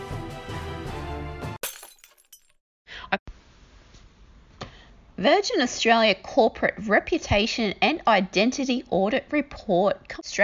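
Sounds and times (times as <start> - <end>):
music: 0.0 - 1.6
glass shattering: 1.6 - 2.6
speech: 5.2 - 10.4.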